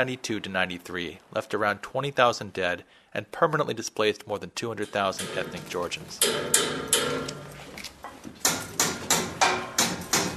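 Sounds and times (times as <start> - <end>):
speech: 0.0 - 6.6
hammer striking a frozen padlock: 4.8 - 7.6, 8.5 - 10.3.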